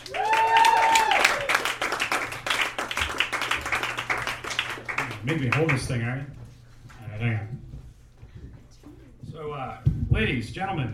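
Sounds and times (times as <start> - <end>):
whoops and cheers: 0.0 - 1.8
crowd applause: 0.0 - 5.8
speech: 5.2 - 6.4, 7.2 - 7.7, 9.6 - 10.9.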